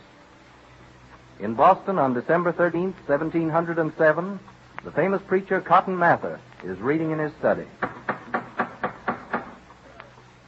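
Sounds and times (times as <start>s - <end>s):
speech: 1.4s - 8.0s
knocking on a door: 7.8s - 9.6s.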